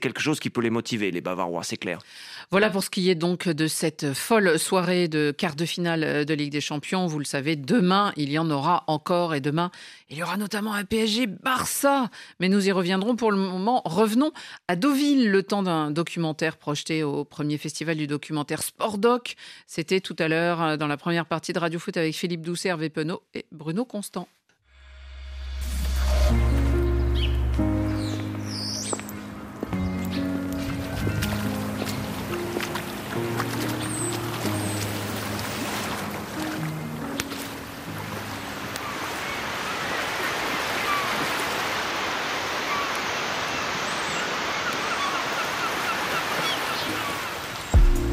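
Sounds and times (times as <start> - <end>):
speech: 0.0 - 24.4
low musical tones: 24.8 - 39.2, 47.8 - 48.1
waves washing and lapping against a shore: 29.0 - 47.8.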